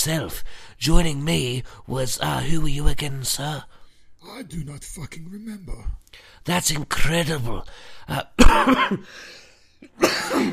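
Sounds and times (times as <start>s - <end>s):
speech: 0.0s - 10.5s
person coughing hard: 8.4s - 10.5s.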